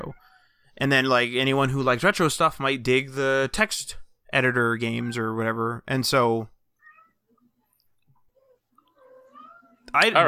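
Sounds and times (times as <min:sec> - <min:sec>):
speech: 0:00.8 - 0:06.5, 0:09.9 - 0:10.2
hungry cat meowing: 0:06.8 - 0:07.4, 0:08.4 - 0:09.9.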